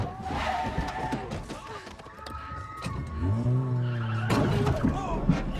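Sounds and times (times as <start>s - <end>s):
car tires squealing in a skid: 0.2s - 1.4s, 2.4s - 5.5s.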